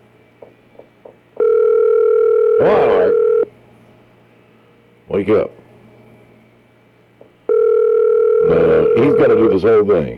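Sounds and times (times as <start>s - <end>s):
sustained two-pitch phone tone while calling a cell phone: 1.4s - 3.5s, 7.5s - 9.6s
speech: 5.2s - 5.6s, 9.0s - 10.1s.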